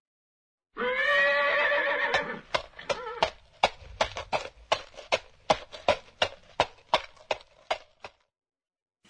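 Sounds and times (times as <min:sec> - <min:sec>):
horse whinnying: 0:00.8 - 0:03.4
horse hooves clip-clopping while walking: 0:01.9 - 0:08.2.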